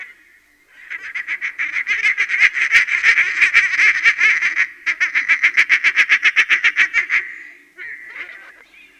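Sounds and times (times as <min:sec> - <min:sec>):
group of mallard ducks: 0:00.8 - 0:08.7.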